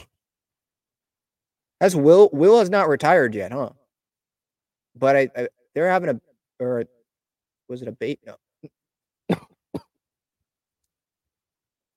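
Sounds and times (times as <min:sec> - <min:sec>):
speech: 0:01.8 - 0:03.8, 0:05.0 - 0:07.0, 0:07.7 - 0:09.4
throat clearing: 0:08.6 - 0:10.0
harsh coughs: 0:09.3 - 0:10.0.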